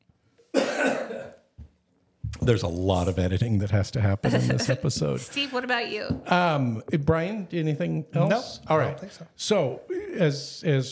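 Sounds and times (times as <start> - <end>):
loud harsh cough: 0.5 - 1.5, 4.3 - 4.8
speech: 2.4 - 10.9
laughter: 4.2 - 5.2.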